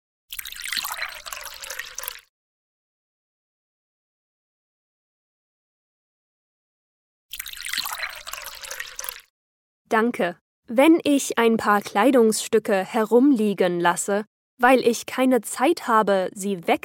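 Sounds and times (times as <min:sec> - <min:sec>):
water poured into a glass: 0:00.3 - 0:02.3, 0:07.3 - 0:09.3
speech: 0:09.9 - 0:16.8.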